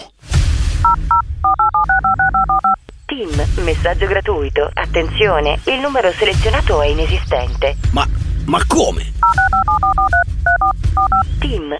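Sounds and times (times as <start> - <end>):
low rumble: 0.2 - 11.7
touch-tone keypad beeps dialing a telephone number: 0.9 - 2.8, 9.2 - 11.4
speech: 3.6 - 9.6, 11.4 - 11.7.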